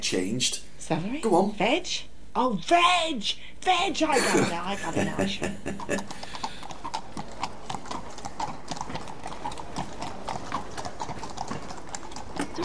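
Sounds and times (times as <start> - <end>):
speech: 0.0 - 6.4
low noise: 0.0 - 12.6
laughter: 4.2 - 6.1
small horse's hooves clip-clopping: 5.0 - 12.6.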